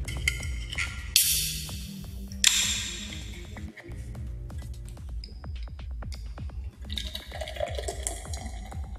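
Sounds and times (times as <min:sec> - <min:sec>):
clinks and handling sounds: 0:00.1 - 0:07.2
beer fizzing hiss: 0:06.8 - 0:08.9.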